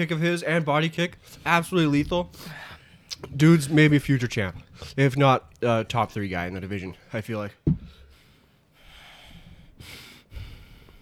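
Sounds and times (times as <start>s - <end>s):
speech: 0.0s - 8.0s
heavy forceful breathing through the nose: 2.3s - 3.2s, 7.8s - 11.0s.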